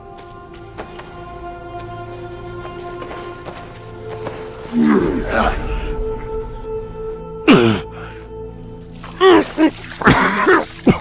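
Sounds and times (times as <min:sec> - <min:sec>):
water splashing during water torture: 0:00.1 - 0:11.0
person undergoing water torture coughing and choking: 0:07.5 - 0:07.9, 0:09.2 - 0:11.0.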